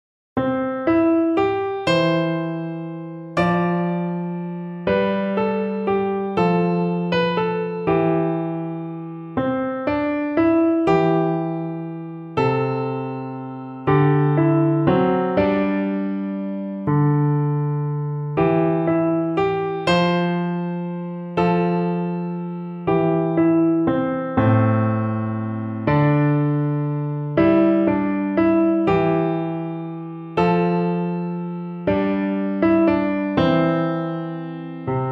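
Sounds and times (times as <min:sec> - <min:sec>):
easy piano piece: 0:00.4 - 0:35.1.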